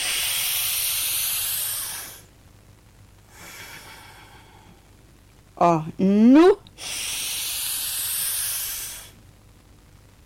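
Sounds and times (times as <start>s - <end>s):
deep breaths in and out through nose: 0.0s - 2.2s, 3.3s - 4.9s, 6.8s - 9.2s
speech: 5.6s - 7.0s.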